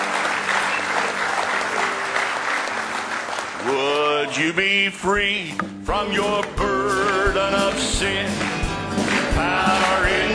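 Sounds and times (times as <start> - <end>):
congregation hand clapping during a church worship service: 0.0 - 4.8, 7.0 - 10.3
speech: 3.6 - 10.3.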